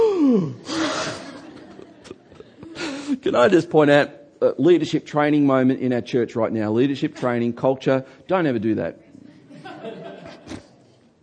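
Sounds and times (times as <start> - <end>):
person imitating the audible gasp of a shocked church crowd: 0.0 - 1.1
laughter: 0.7 - 3.3, 9.2 - 11.0
speech: 3.2 - 9.0.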